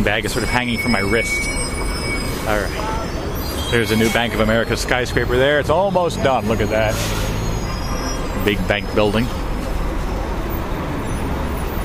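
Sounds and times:
speech: 0:00.0 - 0:07.2, 0:08.4 - 0:09.4
city bus engine and tyre roar in street traffic: 0:00.0 - 0:11.8.

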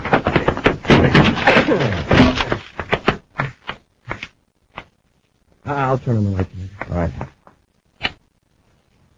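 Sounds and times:
door being forced open with crashing and splintering: 0:00.0 - 0:03.0
heavy thuds: 0:00.0 - 0:04.2
speech: 0:05.9 - 0:07.3.

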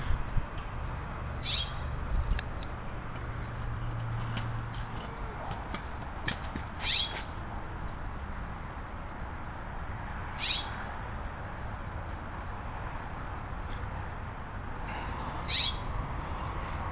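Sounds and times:
outdoor hum: 0:00.0 - 0:16.8
bird calling from a tree: 0:01.4 - 0:01.8, 0:06.8 - 0:07.3, 0:10.4 - 0:10.7, 0:15.5 - 0:15.8.

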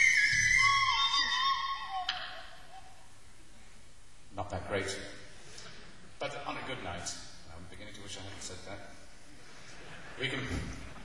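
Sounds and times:
cheap tin whistle playing high breathy sliding notes: 0:00.0 - 0:02.2
speech: 0:04.7 - 0:05.1, 0:10.2 - 0:10.8.

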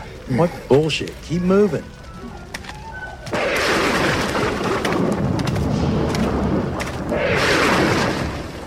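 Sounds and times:
speech: 0:00.3 - 0:02.3
thunder from lightning arcing over a desert: 0:03.1 - 0:08.6.

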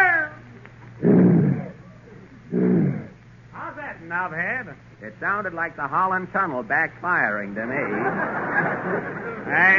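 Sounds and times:
person imitating a lion's roar: 0:01.0 - 0:03.2
speech: 0:04.0 - 0:09.7
laughter: 0:07.6 - 0:09.7.

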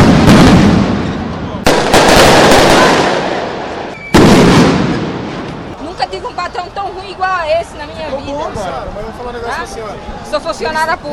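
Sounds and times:
firework rockets launched and exploding: 0:00.0 - 0:06.0
crowd-like noise: 0:00.0 - 0:11.1
speech: 0:06.8 - 0:11.1.

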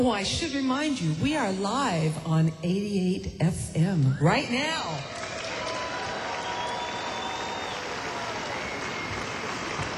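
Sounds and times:
speech: 0:00.0 - 0:05.2
audience applause: 0:05.0 - 0:09.9.

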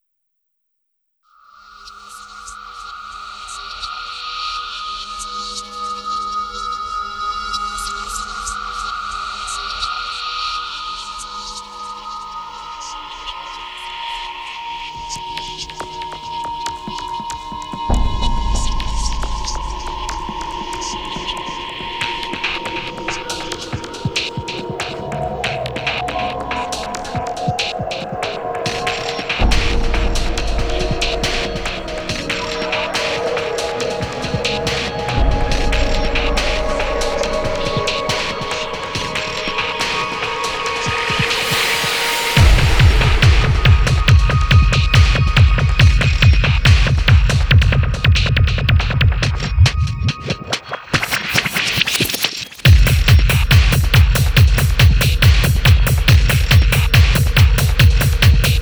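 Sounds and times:
tech trance music: 0:15.4 - 0:58.6.

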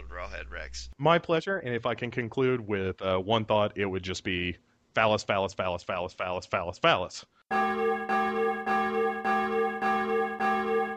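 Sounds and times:
speech: 0:00.3 - 0:08.2
church bell ringing: 0:07.5 - 0:10.9.

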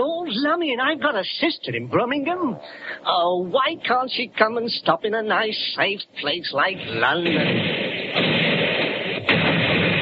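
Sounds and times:
speech: 0:00.3 - 0:07.8
artillery guns in Regent's Park, London, firing: 0:07.1 - 0:10.0
sharp artillery blast: 0:07.2 - 0:10.0.

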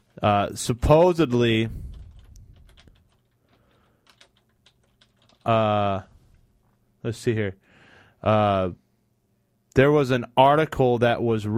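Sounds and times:
speech: 0:00.2 - 0:01.9, 0:05.5 - 0:06.1, 0:07.0 - 0:07.6, 0:08.2 - 0:08.8, 0:09.8 - 0:11.5
typing a Google search on a computer keyboard: 0:01.9 - 0:05.6.

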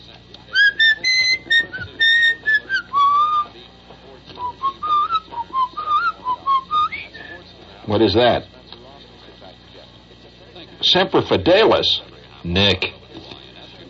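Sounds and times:
person whistling a tune: 0:00.6 - 0:03.5, 0:04.4 - 0:07.4
speech: 0:07.9 - 0:08.5, 0:10.9 - 0:13.0.

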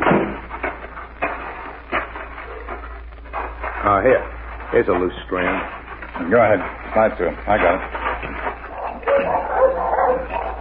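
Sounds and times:
steady low hum: 0:00.0 - 0:10.5
several dogs barking by a tree in front of a house with a barn: 0:01.9 - 0:03.0, 0:07.8 - 0:10.5
speech: 0:03.9 - 0:08.4.

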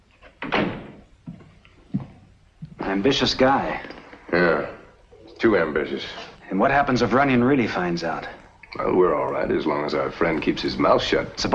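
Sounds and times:
door being shut: 0:00.2 - 0:01.1
speech: 0:02.9 - 0:04.8, 0:05.4 - 0:11.5.

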